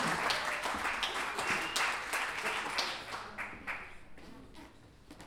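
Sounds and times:
audience applause at a tournament of improvised verse: 0:00.0 - 0:04.0.

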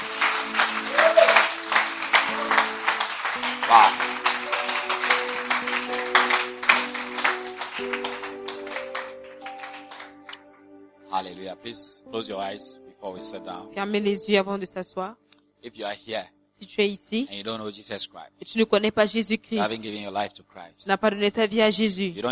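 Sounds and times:
large crowd clapping and applauding: 0:00.0 - 0:10.5
sustained keyboard chords: 0:00.0 - 0:15.1
speech: 0:11.6 - 0:22.2.

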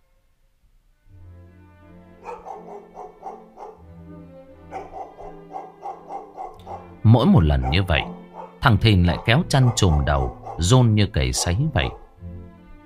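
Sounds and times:
black dog barking in a yard at night: 0:02.2 - 0:03.9, 0:04.7 - 0:12.2
speech: 0:07.1 - 0:12.0.

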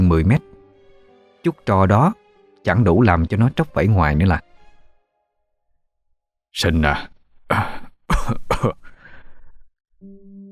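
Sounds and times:
speech: 0:00.1 - 0:00.5, 0:01.4 - 0:04.5, 0:06.6 - 0:08.8
elderly man coughing: 0:07.5 - 0:09.1
elderly man labored breathing: 0:08.8 - 0:09.7.

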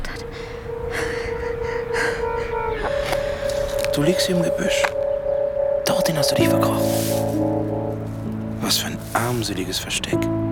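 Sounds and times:
gasping breaths: 0:00.0 - 0:03.9
steady tonal background: 0:00.0 - 0:10.5
speech: 0:04.0 - 0:05.0, 0:06.1 - 0:07.5, 0:08.7 - 0:10.3.

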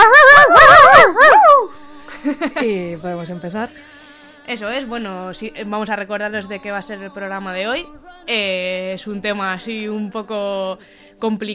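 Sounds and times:
dog barking: 0:00.0 - 0:01.7
speech: 0:03.0 - 0:03.9, 0:04.5 - 0:11.5.

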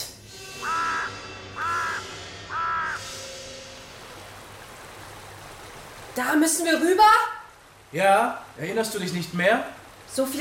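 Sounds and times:
ravens croaking in a gorge: 0:00.4 - 0:03.4
speech: 0:06.2 - 0:07.3, 0:07.9 - 0:10.3.

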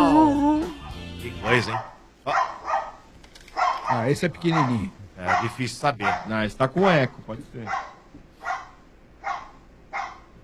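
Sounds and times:
dog barking: 0:01.4 - 0:03.0, 0:03.6 - 0:06.4, 0:07.6 - 0:10.3
speech: 0:01.5 - 0:02.4, 0:03.9 - 0:07.9.

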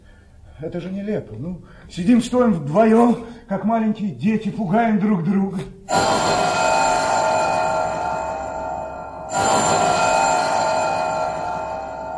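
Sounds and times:
speech: 0:00.6 - 0:06.5
electric bell ringing: 0:05.9 - 0:12.1.

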